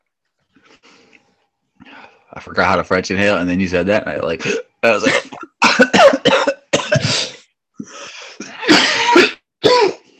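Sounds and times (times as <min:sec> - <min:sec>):
speech: 0:02.4 - 0:06.4
harsh coughing after smoking a joint: 0:04.4 - 0:10.1.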